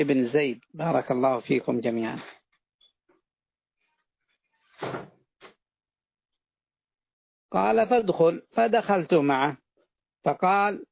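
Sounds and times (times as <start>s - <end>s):
speech: 0.0s - 2.4s, 7.5s - 9.6s, 10.2s - 10.8s
door pushed shut with a solid thud: 4.8s - 5.2s.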